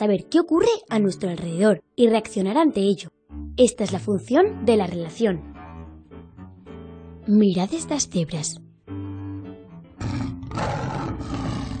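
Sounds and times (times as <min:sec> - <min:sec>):
speech: 0:00.0 - 0:05.5, 0:07.2 - 0:08.6
lion roaring with deep rumbling growls and raspy bellow: 0:10.0 - 0:11.7.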